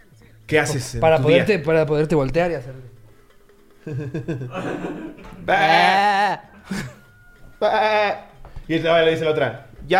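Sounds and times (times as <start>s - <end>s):
speech: 0.5s - 3.0s, 3.8s - 7.0s, 7.6s - 9.9s
person making short voiced chuckling noises: 3.8s - 7.0s
person mimicking a goat with loud wavering bleats: 5.4s - 6.4s.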